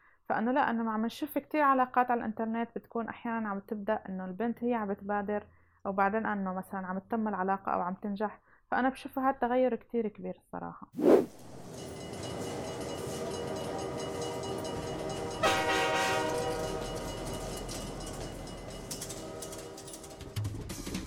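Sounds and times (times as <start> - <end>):
speech: 0.3 - 11.5
train rumbling past with a rolling clatter: 11.2 - 20.8
loud train horn blast: 14.9 - 17.6, 18.9 - 20.4.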